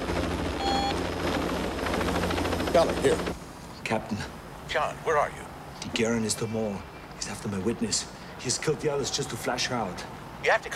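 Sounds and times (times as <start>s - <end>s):
police helicopter rotor and engine heard from inside the cabin: 0.0s - 3.7s
speech: 2.8s - 10.7s.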